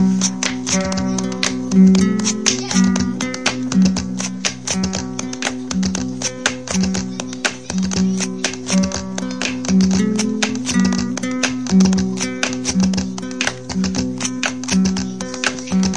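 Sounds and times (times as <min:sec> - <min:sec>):
guitar percussion: 0:00.0 - 0:15.9.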